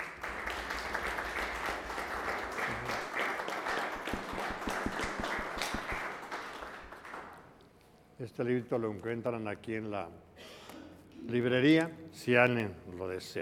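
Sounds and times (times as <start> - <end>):
audience applause after a recited prayer-poem: 0.0 - 7.5
speech: 8.2 - 10.3, 11.3 - 13.3.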